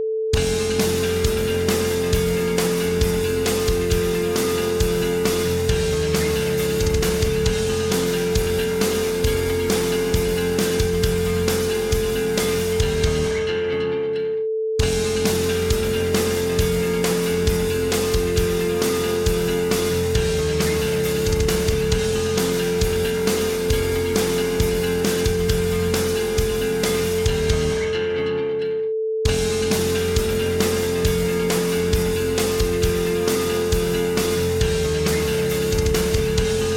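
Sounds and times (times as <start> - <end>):
sine tone: 0.0 - 36.7.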